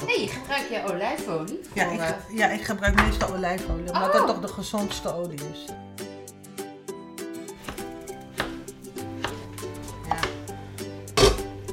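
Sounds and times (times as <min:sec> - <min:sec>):
speech: 0:00.5 - 0:06.0
knife chopping an onion on a cutting board: 0:07.6 - 0:10.4.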